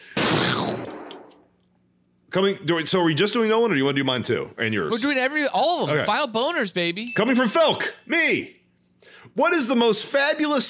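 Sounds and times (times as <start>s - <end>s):
gunshot sound effect with decaying echo: 0.1s - 1.3s
speech: 2.3s - 8.6s, 9.3s - 10.6s.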